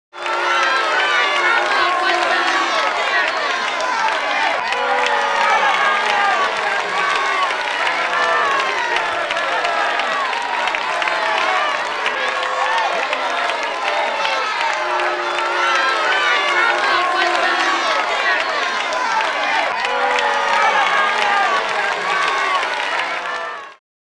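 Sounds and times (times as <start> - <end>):
medium crowd applause: 0.1 - 23.8.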